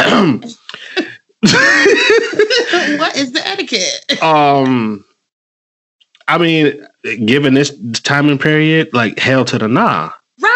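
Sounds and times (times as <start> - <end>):
throat clearing with raspy grunts: 0.0 - 1.2, 4.2 - 5.0
laughter: 0.0 - 3.4, 4.1 - 5.0
speech: 0.2 - 0.6, 3.2 - 5.1, 6.3 - 10.5.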